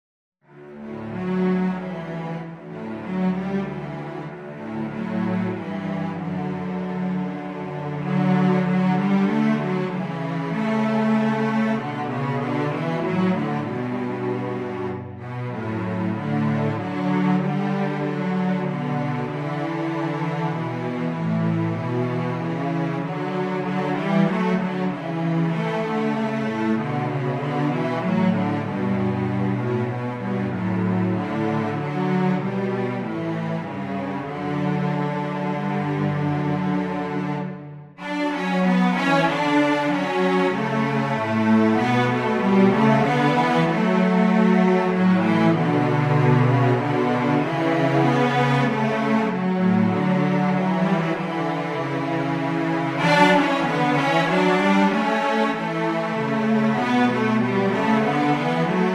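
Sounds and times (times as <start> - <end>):
cello duet: 0.4 - 58.9.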